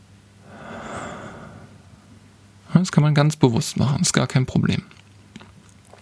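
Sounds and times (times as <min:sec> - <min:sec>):
slow deep breathing during a meditation exercise: 0:00.4 - 0:02.6
speech: 0:02.8 - 0:05.0.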